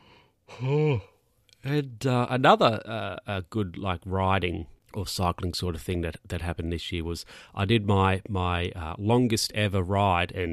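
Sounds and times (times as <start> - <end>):
person yawning: 0.5 - 1.2
speech: 0.6 - 10.5.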